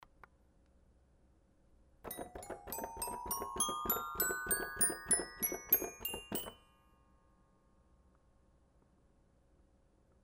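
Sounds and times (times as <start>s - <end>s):
toy piano: 2.1s - 6.8s.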